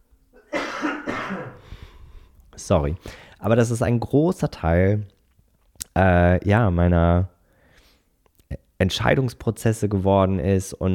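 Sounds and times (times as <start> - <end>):
person coughing: 0.4 - 1.7
speech: 2.6 - 5.2, 6.0 - 7.3, 8.5 - 10.9.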